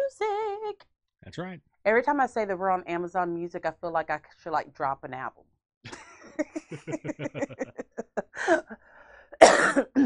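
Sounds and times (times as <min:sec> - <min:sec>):
speech: 0:00.2 - 0:10.0
laughter: 0:05.9 - 0:08.8
person coughing: 0:06.7 - 0:07.7, 0:09.4 - 0:10.0.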